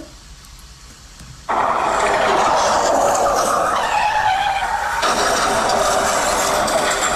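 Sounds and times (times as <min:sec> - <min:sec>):
car skid sound effect: 0:01.5 - 0:07.1.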